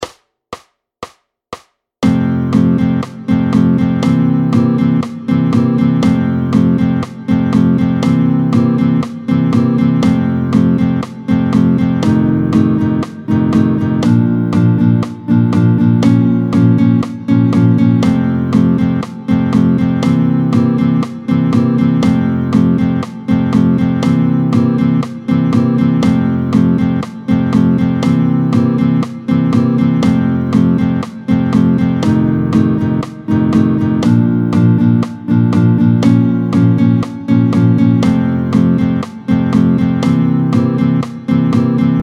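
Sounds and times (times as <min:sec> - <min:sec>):
fast rhythm: 0:00.0 - 0:42.0.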